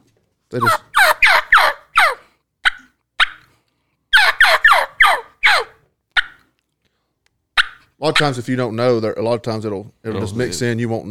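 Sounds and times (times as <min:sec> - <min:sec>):
speech: 0:00.5 - 0:00.9, 0:08.0 - 0:11.0
turkey call clucks and purrs: 0:00.6 - 0:03.5, 0:04.1 - 0:06.6, 0:07.6 - 0:08.3.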